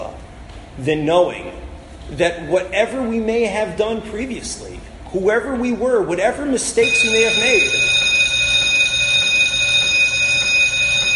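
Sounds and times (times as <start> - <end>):
speech: 0.8 - 8.0
bell ringing: 6.8 - 11.1.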